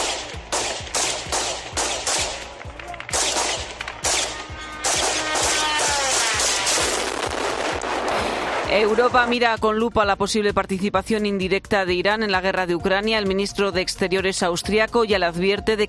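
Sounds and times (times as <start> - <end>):
police gunfire shooting at a drone: 0.0 - 9.2
speech: 8.8 - 15.8.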